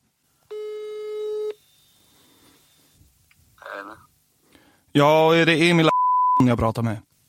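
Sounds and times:
telephone ringing tone as a police officer places a call: 0.5 - 1.6
quiet phone line hiss: 0.5 - 3.0
speech: 4.9 - 7.1.

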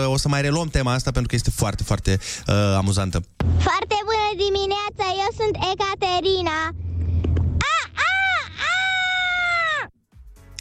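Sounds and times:
speech: 0.0 - 6.8
brief low rumble: 5.0 - 7.6
person imitating a rooster crowing in a yawning voice: 7.6 - 9.9.

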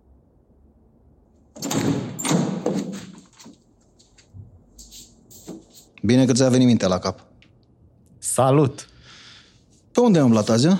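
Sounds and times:
door latch clunk: 1.6 - 3.1
door scraping and rattling as it opens: 1.6 - 3.5
quiet knocks and shuffles: 2.6 - 6.7
speech: 2.7 - 3.1, 6.0 - 7.3, 8.4 - 8.9, 10.0 - 10.7.

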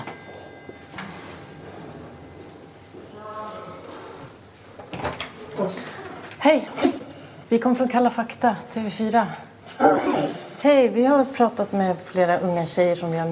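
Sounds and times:
doorbell chiming: 0.0 - 2.7
door opening clunk and rattle: 4.8 - 5.4
speech: 5.6 - 13.2.

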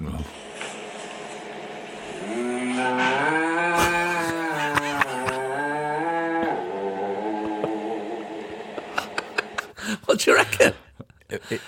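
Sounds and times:
person imitating a singing cow mooing at work: 2.2 - 8.4
laughter: 3.7 - 5.8, 7.2 - 10.0
speech: 10.2 - 10.8, 11.5 - 11.6.

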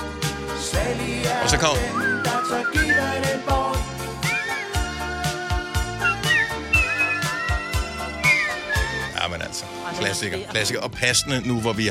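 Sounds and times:
backing of steady drums and instruments: 0.0 - 11.8
speech: 0.7 - 3.8, 9.6 - 11.8
whistled song melody: 1.5 - 9.4.

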